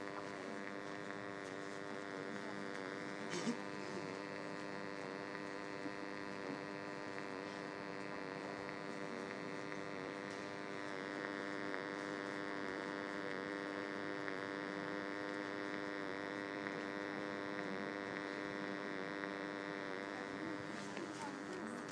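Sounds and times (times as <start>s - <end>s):
rail indicator board hum: 0.0s - 21.9s.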